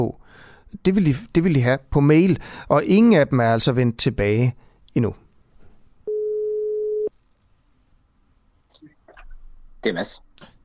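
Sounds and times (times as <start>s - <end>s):
speech: 0.0s - 5.2s, 9.8s - 10.5s
telephone ringback tone over a line before call answered: 6.1s - 7.1s.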